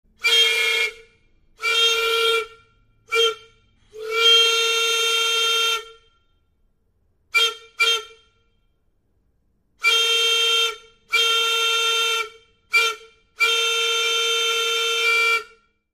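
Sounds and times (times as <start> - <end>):
train air whistle: 0.1 - 6.3, 7.3 - 8.5, 9.8 - 15.8.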